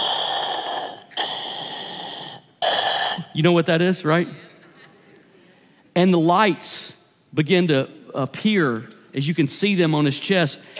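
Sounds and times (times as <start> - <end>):
voice imitating heavy muffled mechanical mask breathing: 0.0 - 3.4
speech: 3.4 - 4.4, 6.0 - 10.7.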